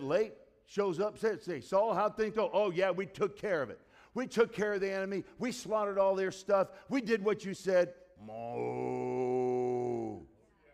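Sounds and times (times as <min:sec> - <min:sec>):
speech: 0:00.0 - 0:09.2
person imitating cattle mooing: 0:08.2 - 0:10.3.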